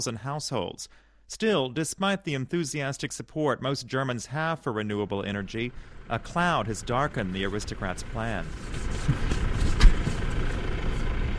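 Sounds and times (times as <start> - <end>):
speech: 0.0 - 9.4
tractor engine rumbling in rural fields near Feldkirchen Germany: 4.8 - 11.3.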